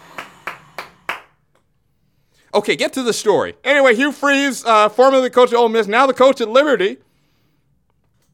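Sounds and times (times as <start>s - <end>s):
one person clapping hands: 0.1s - 1.4s
speech: 2.6s - 7.0s.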